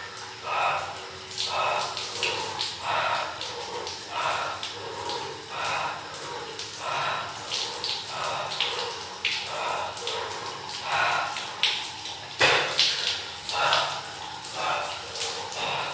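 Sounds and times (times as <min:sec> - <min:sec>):
cold shower water splashing against a person's body: 0:00.2 - 0:15.9.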